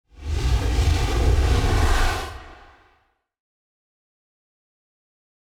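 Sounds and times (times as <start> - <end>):
hollow whooshes: 0.2 - 2.9.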